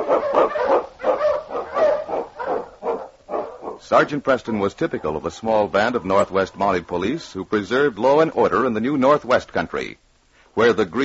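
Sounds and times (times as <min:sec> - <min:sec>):
husky sled dog barking: 0:00.0 - 0:03.9
speech: 0:03.9 - 0:10.0, 0:10.6 - 0:11.0.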